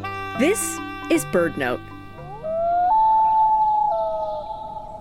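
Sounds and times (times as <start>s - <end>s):
speech: 0.4s - 1.9s
loon wail: 2.0s - 4.9s.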